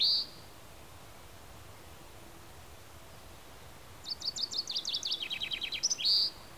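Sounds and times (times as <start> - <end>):
Common chaffinch song: 0.0 - 6.5.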